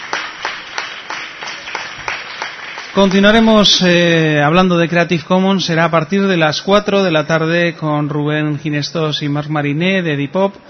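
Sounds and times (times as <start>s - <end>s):
audience applause: 0.0s - 3.8s
speech: 3.0s - 10.6s.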